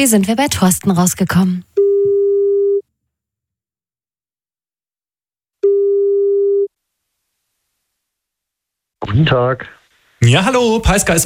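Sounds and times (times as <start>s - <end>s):
speech: 0.0s - 1.8s, 9.1s - 11.2s
electronic telephone ringback tones of an outgoing call: 1.8s - 2.8s, 5.6s - 6.7s.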